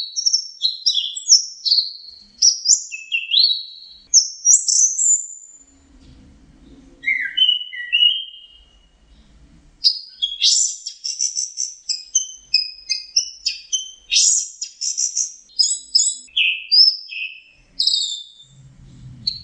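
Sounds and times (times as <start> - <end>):
orange-headed thrush whistled song: 0.0 - 5.6, 7.0 - 8.9, 9.8 - 18.6
soft low rumble: 5.7 - 7.0, 18.5 - 19.4.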